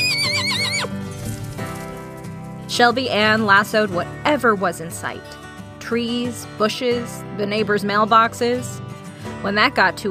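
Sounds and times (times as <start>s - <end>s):
pony whinnying: 0.0s - 1.0s
pony hooves clopping while galloping through woods: 0.0s - 2.6s
speech: 2.7s - 10.0s.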